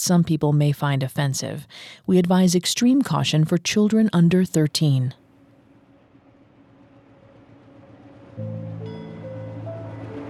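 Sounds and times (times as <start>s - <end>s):
speech: 0.0s - 5.2s
train rumbling away from a torchlit station: 5.2s - 10.2s.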